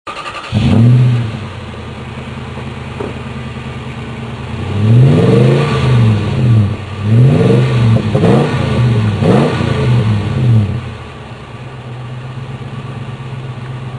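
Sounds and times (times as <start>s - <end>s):
Toyota Tundra truck: 0.1s - 13.9s.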